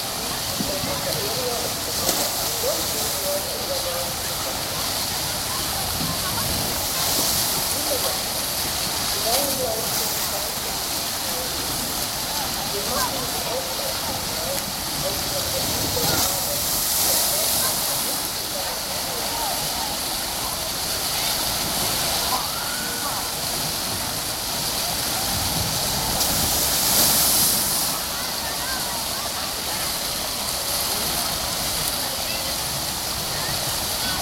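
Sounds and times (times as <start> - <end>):
crowd murmur at open-air public baths: 0.0 - 34.1
rushing water at open-air thermal baths: 0.0 - 34.1.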